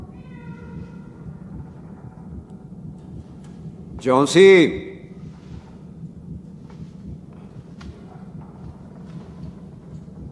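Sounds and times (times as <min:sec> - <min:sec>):
cat meowing: 0:00.0 - 0:01.2
constant deep mechanical rumble: 0:00.0 - 0:10.2
speech: 0:04.0 - 0:04.9.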